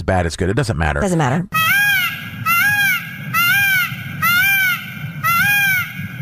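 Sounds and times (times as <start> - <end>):
speech: 0.0 - 1.6
low rumble: 0.0 - 6.2
peacock calls: 1.6 - 6.2.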